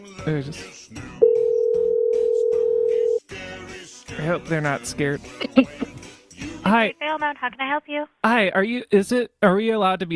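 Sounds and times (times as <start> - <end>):
speech: 0.0 - 1.1, 4.2 - 5.8, 6.6 - 10.1
telephone ringback tone: 1.2 - 3.2.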